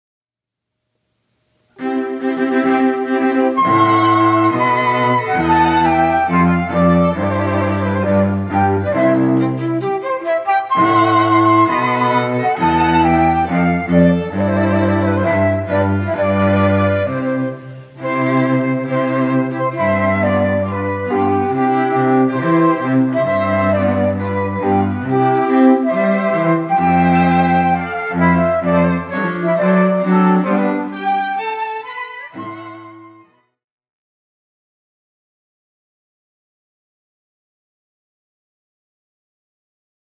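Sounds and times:
string trio playing: 0:01.7 - 0:33.4
flute: 0:01.8 - 0:33.6.

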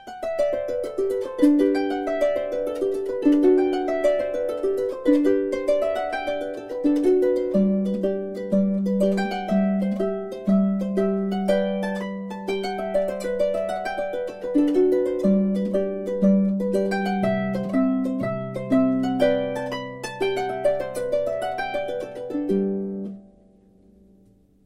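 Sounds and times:
Irish melody on harp: 0:00.0 - 0:24.4.

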